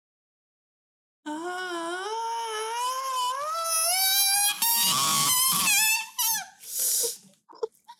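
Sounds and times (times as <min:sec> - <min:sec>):
long piercing scream coming from a safe: 0:02.1 - 0:06.5.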